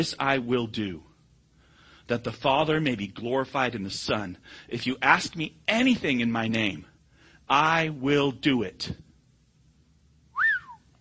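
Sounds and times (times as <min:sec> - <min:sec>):
speech: 0:00.0 - 0:01.1, 0:02.1 - 0:06.9, 0:07.5 - 0:09.0
faint low hum: 0:00.0 - 0:10.9
single clear human whistle with rising-then-falling tone: 0:10.3 - 0:10.9.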